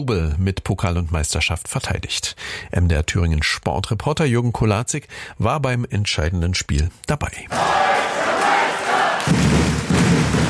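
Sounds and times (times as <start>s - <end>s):
speech: 0.0s - 8.3s
fans roaring and cheering after championship win: 7.5s - 10.4s.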